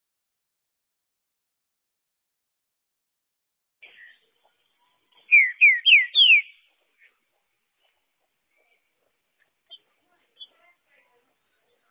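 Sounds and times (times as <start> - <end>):
green-winged saltator singing whistled downward-slurred notes: 5.3 - 6.6.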